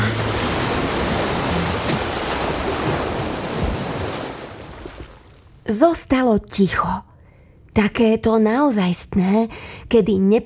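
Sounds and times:
loud thunderous rushing roar of water noise: 0:00.0 - 0:04.1
speech: 0:05.7 - 0:07.1, 0:07.8 - 0:10.4.

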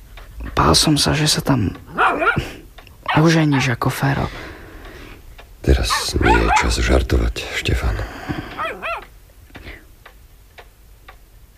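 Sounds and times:
speech: 0:00.7 - 0:02.5, 0:03.1 - 0:04.4, 0:05.6 - 0:08.5
dog whimpering: 0:01.9 - 0:02.5, 0:03.1 - 0:03.8, 0:05.9 - 0:06.9, 0:08.5 - 0:09.1.

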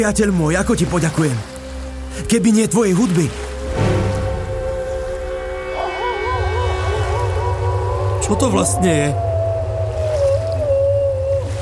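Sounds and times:
speech: 0:00.0 - 0:01.5, 0:02.1 - 0:04.0, 0:08.3 - 0:09.3
deep continuous rumble of waves: 0:00.0 - 0:11.5
sea monster barking and whining: 0:03.6 - 0:11.5.

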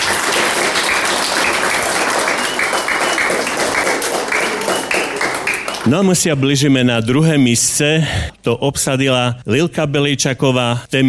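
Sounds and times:
audience applause for prize winner: 0:00.0 - 0:06.3
speech: 0:05.8 - 0:11.0.

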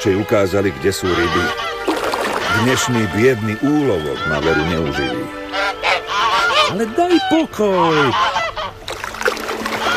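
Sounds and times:
speech: 0:00.0 - 0:01.8, 0:02.5 - 0:05.4, 0:06.7 - 0:08.4
birds screeching and honking: 0:00.0 - 0:09.9
splashing water: 0:01.8 - 0:04.2, 0:08.8 - 0:09.9.

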